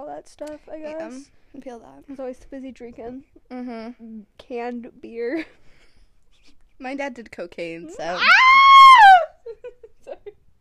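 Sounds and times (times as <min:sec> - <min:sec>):
speech: 0:00.2 - 0:05.8, 0:06.4 - 0:08.7
high-pitched scream: 0:08.2 - 0:09.3.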